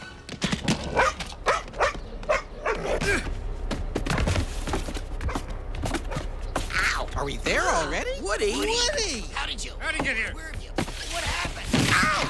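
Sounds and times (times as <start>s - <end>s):
dog barking: 0.9s - 3.0s
steady rumble: 0.9s - 12.2s
speech: 7.2s - 10.6s.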